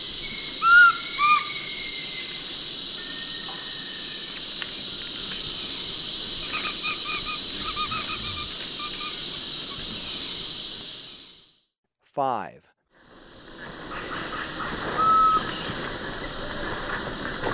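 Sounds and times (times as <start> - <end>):
constant insect hum: 0.0 - 11.7, 12.4 - 17.5
Large-headed flatbill whistled call notes in Ecuador: 0.2 - 2.3, 6.5 - 9.8, 13.9 - 15.8
speech: 12.2 - 12.6.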